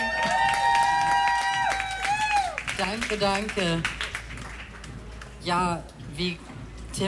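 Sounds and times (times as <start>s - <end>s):
audience clapping: 0.0s - 5.4s
speech: 2.8s - 4.0s, 5.4s - 7.0s.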